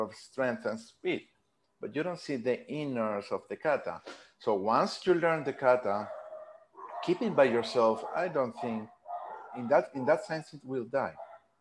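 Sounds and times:
speech: 0.0s - 6.2s, 7.0s - 11.2s
dog barking: 5.9s - 10.3s, 11.2s - 11.5s.

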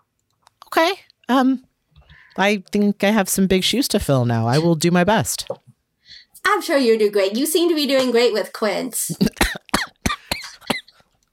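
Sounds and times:
speech: 0.7s - 1.7s, 2.4s - 5.6s, 6.4s - 9.5s
person coughing raspy squeaky coughs in a croaky character voice: 4.5s - 4.8s, 9.1s - 11.0s.

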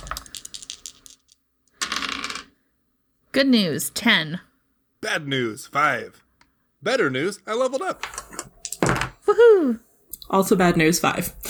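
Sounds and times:
dice rolling on a hard tabletop for a role-playing game check: 0.0s - 2.6s, 7.6s - 9.2s
speech: 3.4s - 6.2s, 6.8s - 8.5s, 9.3s - 11.4s.

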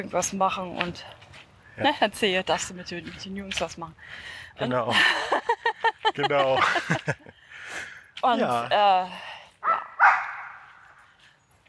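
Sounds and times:
speech: 0.0s - 5.5s, 6.1s - 9.3s
laughter: 4.9s - 7.7s
dog barking: 9.6s - 10.8s.

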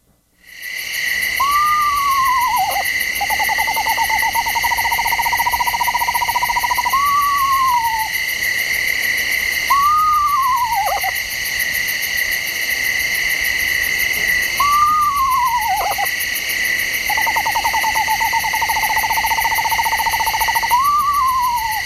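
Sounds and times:
constant high drone of night insects: 0.4s - 21.8s
eastern screech owl calling with whinnies and trills: 1.4s - 8.2s, 9.7s - 11.2s, 14.6s - 16.1s, 17.1s - 21.8s.

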